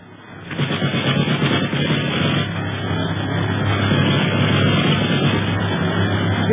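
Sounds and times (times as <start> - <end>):
airplane engine roar: 0.0 - 6.5
machine-gun fire from another plane in the air: 0.4 - 2.6, 3.7 - 5.6.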